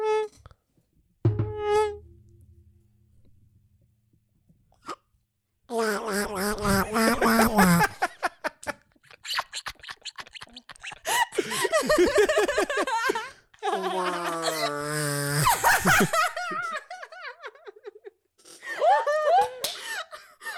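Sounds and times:
voice imitating a mosquito buzz: 5.7s - 7.8s
laughter: 5.7s - 20.5s
breaths: 11.0s - 11.8s, 18.4s - 19.0s, 19.7s - 20.5s.

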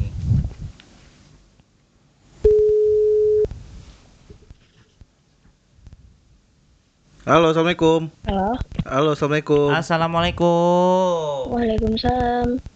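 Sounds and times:
electronic telephone ringing tone of an outgoing phone call: 2.4s - 3.5s
speech: 7.3s - 12.7s.

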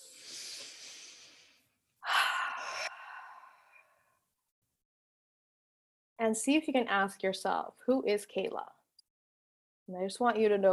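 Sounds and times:
deep breaths during a guided eyes-closed exercise: 0.0s - 4.2s
speech: 6.2s - 8.8s, 9.9s - 10.7s.

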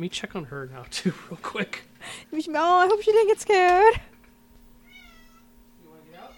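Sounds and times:
speech: 0.0s - 4.1s
steady low electrical hum: 0.0s - 6.3s
cat meowing: 4.8s - 6.3s.

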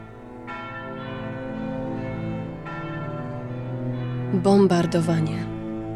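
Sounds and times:
large church bells ringing: 0.0s - 5.9s
speech: 4.3s - 5.6s.

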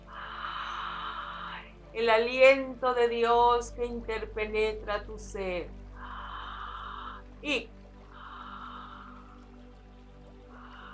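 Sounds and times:
deep breath drawn in through the mouth: 0.0s - 1.8s, 6.0s - 9.8s, 10.5s - 10.9s
speech: 2.0s - 5.8s, 7.4s - 7.8s.

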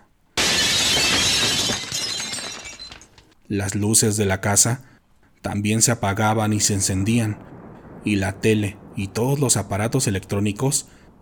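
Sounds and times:
glass shards tinkling and scattering: 0.4s - 3.3s
glass windows of a house shattering: 0.4s - 3.4s
speech: 3.5s - 11.0s.

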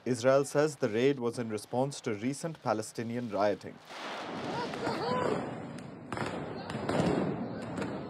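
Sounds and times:
fireworks cracking and popping: 0.0s - 8.0s
speech: 0.1s - 5.5s
loud chaotic crowd shouting: 4.4s - 5.5s.

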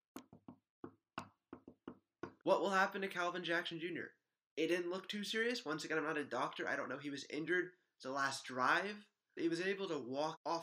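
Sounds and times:
sharp knocks on wood: 0.3s - 2.4s
speech: 2.4s - 10.6s.

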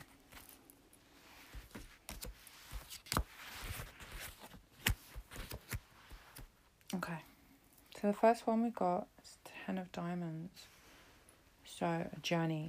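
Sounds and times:
tarot cards being shuffled: 0.0s - 6.5s
speech: 8.0s - 9.1s, 9.7s - 10.7s, 11.8s - 12.6s.

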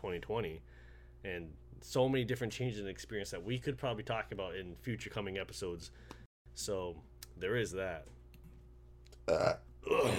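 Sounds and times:
speech: 0.0s - 8.2s, 9.3s - 10.1s
throaty burps: 9.2s - 10.1s.

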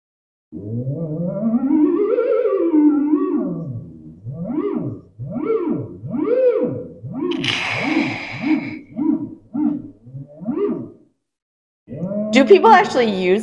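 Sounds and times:
speech: 0.5s - 7.6s, 12.4s - 13.4s
theremin playing a wavering gliding tone: 0.6s - 11.0s.

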